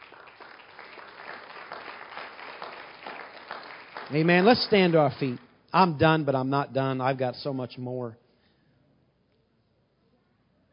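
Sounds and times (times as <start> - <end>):
audience applauding: 0.0 - 5.4
speech: 4.1 - 8.2.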